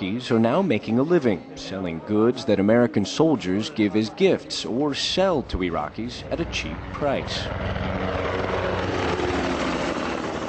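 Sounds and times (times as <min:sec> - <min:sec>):
speech: 0:00.2 - 0:08.3
helicopter rotor chop roaring overhead: 0:05.1 - 0:10.4.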